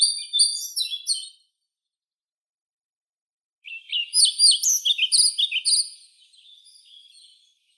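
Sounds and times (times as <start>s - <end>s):
European pied flycatcher Ficedula hypoleuca song: 0.0s - 1.9s, 3.6s - 7.7s.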